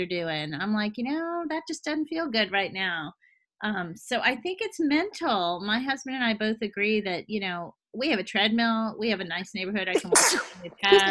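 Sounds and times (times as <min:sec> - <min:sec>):
speech: 0:00.0 - 0:11.0
loud vocal burst: 0:10.0 - 0:11.0
person sneezing: 0:10.0 - 0:11.0
laughter: 0:10.8 - 0:11.0.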